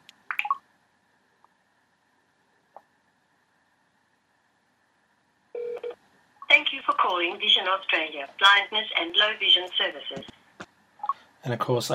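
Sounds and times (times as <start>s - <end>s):
iPhone ringing tone: 5.6s - 5.9s
iPhone beeps: 5.6s - 6.0s
speech: 7.0s - 10.4s, 11.4s - 11.9s.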